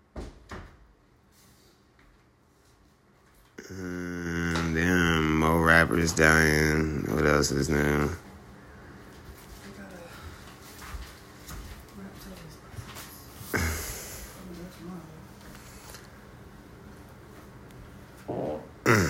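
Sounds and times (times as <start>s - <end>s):
speech: 3.6s - 8.2s
raspy fart: 18.4s - 19.0s.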